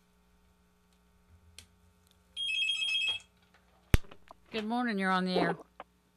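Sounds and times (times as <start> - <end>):
quiet hum: 0.0 - 6.1
electronic telephone ring from an incoming call: 2.4 - 3.3
speech: 4.6 - 5.7.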